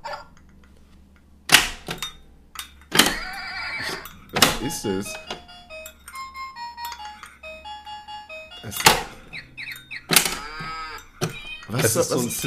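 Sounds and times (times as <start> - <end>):
synthesized farm animal moo-like bray from electronic toy farmhouse: 3.1 - 5.8, 7.6 - 12.4
synthesized cat-like meow from electronic toy farmhouse: 3.2 - 4.0
tinny electronic toy farmhouse jingle with simple beeping melody: 3.2 - 12.4
speech: 4.6 - 5.3, 8.7 - 9.0, 11.7 - 12.4.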